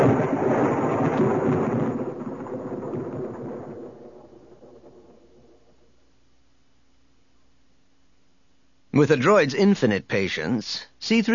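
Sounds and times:
deep rolling thunder rumbling in a storm: 0.0 - 6.0
speech: 9.0 - 11.3.

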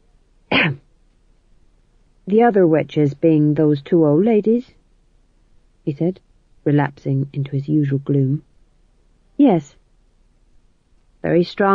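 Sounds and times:
man coughing: 0.5 - 0.8
speech: 2.3 - 4.8, 5.8 - 8.5, 9.4 - 9.8, 11.2 - 11.7.

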